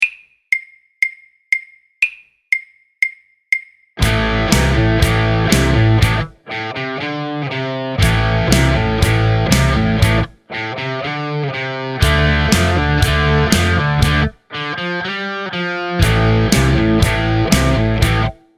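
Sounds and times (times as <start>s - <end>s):
hard rock music full mix: 4.0s - 18.4s.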